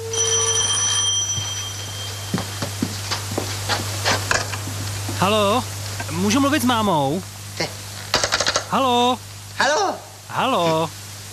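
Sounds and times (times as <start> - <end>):
telephone ringing: 0.0 - 3.1
steady low electrical hum: 0.0 - 11.3
speech: 5.2 - 7.8, 8.7 - 11.0.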